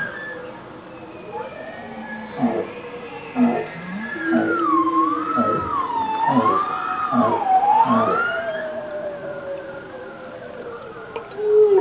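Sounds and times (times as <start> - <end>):
bowhead whale higher wavering tone: 0.0 - 9.8, 11.1 - 11.8
bowhead whale low pulsed notes: 1.0 - 8.6.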